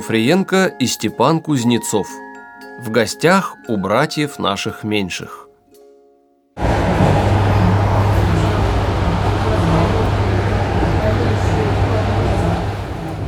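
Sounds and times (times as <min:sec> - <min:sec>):
speech: 0:00.0 - 0:05.4
faint indistinct murmuring: 0:06.6 - 0:13.2
moving electric commuter train carriage rumble: 0:06.6 - 0:13.2.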